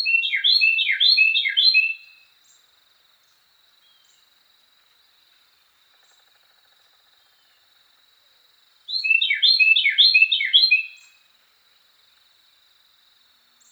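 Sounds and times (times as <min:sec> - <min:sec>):
Carolina wren song: 0:00.0 - 0:04.3, 0:08.9 - 0:11.3.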